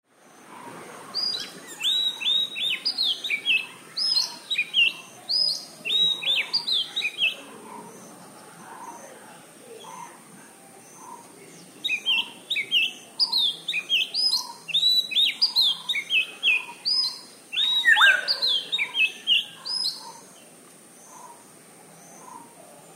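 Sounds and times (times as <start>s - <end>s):
magpie robin singing: 1.2s - 7.5s, 10.8s - 20.2s.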